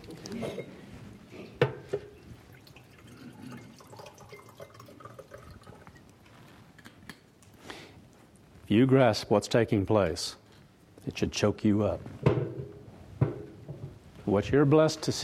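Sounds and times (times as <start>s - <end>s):
water pouring into a glass: 2.2s - 6.2s
speech: 8.7s - 10.4s, 11.1s - 12.2s, 14.3s - 15.2s.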